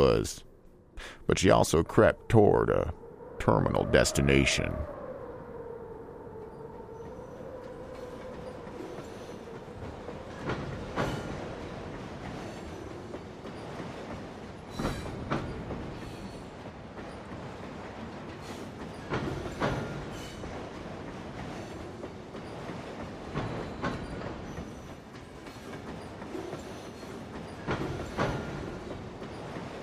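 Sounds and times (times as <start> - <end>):
speech: 0.0 - 5.0
train rolling on rails: 0.0 - 29.8
train wheels clattering over rail joints: 8.0 - 29.8.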